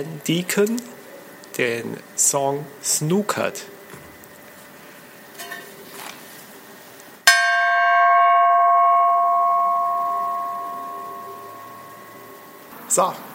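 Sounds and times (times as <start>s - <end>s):
speech: 0.0s - 3.8s, 13.0s - 13.3s
single loud gong strike with bright metallic tone: 7.3s - 12.7s.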